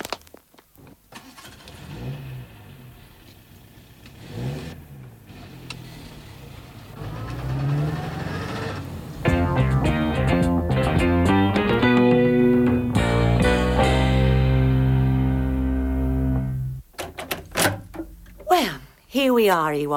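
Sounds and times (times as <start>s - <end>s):
car engine starting: 1.1s - 18.5s
car revving and driving off: 1.2s - 16.8s
speech: 19.3s - 19.9s.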